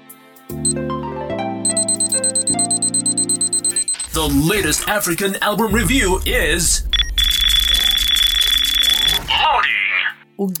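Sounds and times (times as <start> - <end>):
speech: 0.6 - 1.0, 4.2 - 6.9, 10.4 - 10.5
ticking clock sound effect: 1.7 - 9.2
low sustained synth tones: 3.5 - 9.3.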